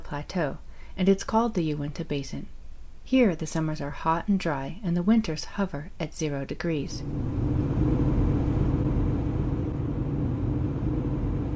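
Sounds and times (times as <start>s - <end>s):
speech: 0.1s - 7.7s
car engine rumble driving into a canyon in the high desert of northeastern Utah: 7.0s - 11.5s.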